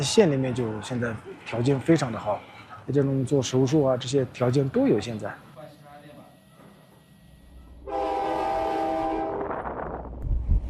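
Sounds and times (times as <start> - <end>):
speech: 0.0 - 5.5
train moving with low rumble and clatter: 0.0 - 10.6
train horn blaring at a railway station: 7.8 - 9.9.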